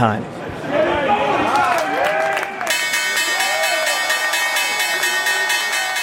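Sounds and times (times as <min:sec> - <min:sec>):
speech: 0:00.0 - 0:00.4
excited crowd cheering and chattering on the trading floor: 0:00.2 - 0:06.0
electric stock exchange opening bell ringing at the New York Stock Exchange: 0:02.7 - 0:06.0.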